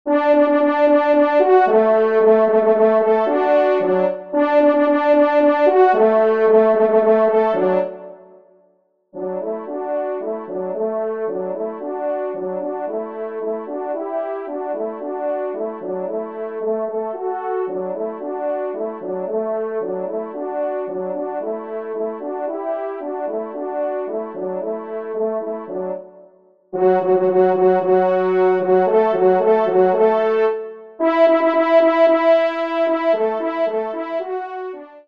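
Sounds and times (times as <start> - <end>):
horn: 0.1 - 8.4, 9.2 - 26.2, 26.8 - 35.0.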